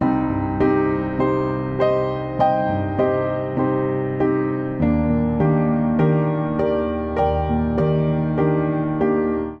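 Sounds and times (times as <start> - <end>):
romantic chord progression in C minor on upright piano: 0.0 - 9.5.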